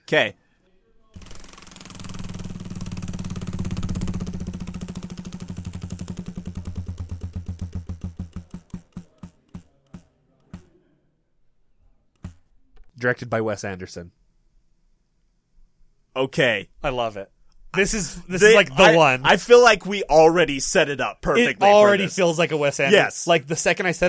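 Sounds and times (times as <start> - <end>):
speech: 0.1 - 0.4, 13.0 - 14.2, 16.2 - 24.0
spinning prize wheel in a studio game clicking: 1.2 - 10.6.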